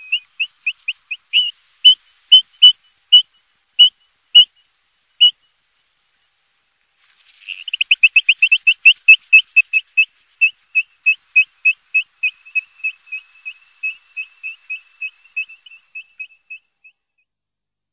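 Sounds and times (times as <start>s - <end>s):
bird piping whistled notes: 0.0s - 4.6s, 7.5s - 17.0s.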